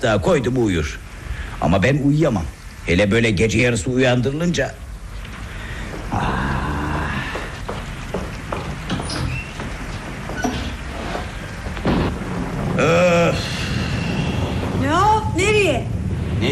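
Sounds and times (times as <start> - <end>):
speech: 0.0 - 4.8, 6.1 - 6.3, 12.8 - 13.1
deep rumbling: 0.0 - 16.5
heavy rain: 0.0 - 16.5.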